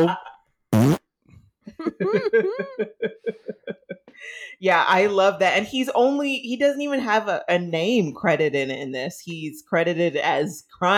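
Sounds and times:
speech: 0.0 - 0.2, 1.8 - 10.9
person laughing: 0.0 - 0.4, 1.7 - 4.5
loud buzzy fart: 0.0 - 1.1.

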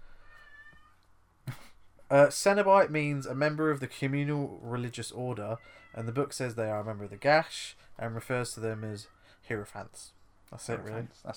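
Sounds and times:
cat meowing in a drawn-out wavering cry: 0.2 - 1.0, 5.6 - 6.1
speech: 2.1 - 11.3.

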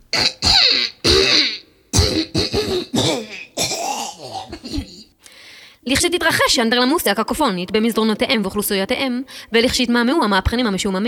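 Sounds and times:
speech: 0.1 - 0.8, 5.9 - 11.0
woman clearing her throat: 0.2 - 5.1.

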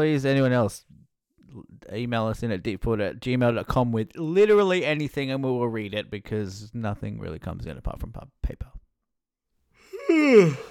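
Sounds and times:
speech: 0.0 - 0.9, 1.5 - 8.8, 10.1 - 10.6
person yawning: 9.8 - 10.6.

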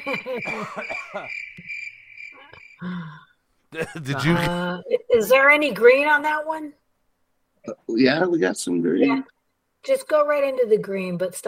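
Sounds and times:
laughter: 0.0 - 1.3, 3.8 - 4.5
speech: 0.0 - 1.6, 2.8 - 6.8, 7.6 - 11.4
crickets chirping sound effect: 0.0 - 3.4.

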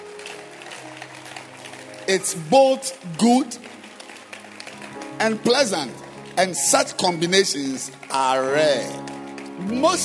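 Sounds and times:
audience of pastors and church members clapping: 0.0 - 10.0
speech: 2.1 - 3.6, 5.2 - 10.0.

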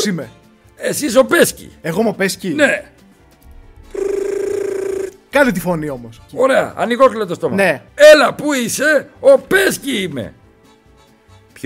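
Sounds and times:
speech: 0.0 - 3.0, 5.3 - 10.4
telephone ringing with a buzzy trill: 3.9 - 5.3.

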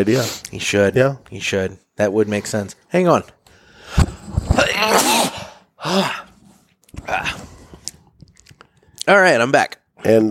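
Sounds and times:
speech: 0.0 - 4.0, 5.9 - 6.2, 9.1 - 10.3
forceful sneezes: 4.6 - 6.4.

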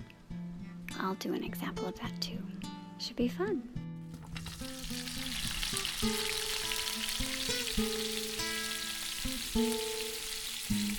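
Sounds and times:
soft sustained musical tones: 0.0 - 10.9
speech: 1.0 - 3.8, 6.0 - 6.4, 7.8 - 8.1, 9.6 - 9.8
food frying in a pan: 4.2 - 10.9.

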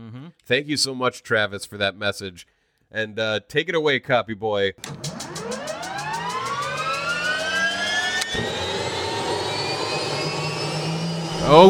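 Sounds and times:
speech: 0.5 - 5.5, 11.4 - 11.6
helicopter turbine whine: 4.8 - 11.6.

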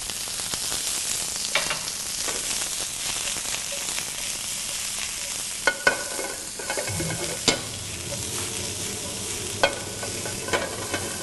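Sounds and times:
ginger, garlic and white onions stir-frying in a heavy-bottomed saute pan over high heat: 0.0 - 11.2
scraping stirs: 4.7 - 11.2.

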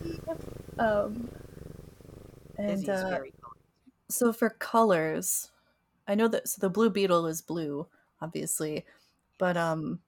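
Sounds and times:
cat purring while rubbing on the microphone: 0.0 - 3.7
speech: 0.3 - 1.3, 2.6 - 3.4, 4.1 - 5.5, 6.1 - 10.0.

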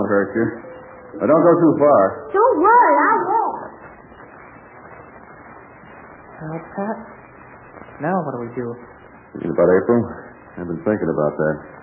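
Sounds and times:
timber wolf howling: 0.0 - 3.7
faint noise: 0.0 - 11.8
speech: 0.1 - 3.4, 6.4 - 7.2, 8.0 - 11.8.

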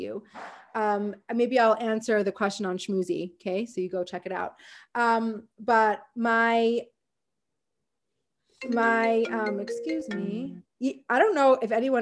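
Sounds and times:
speech: 0.0 - 6.9, 8.6 - 12.0
voice imitating a phone or computer notification chime: 8.6 - 10.6.

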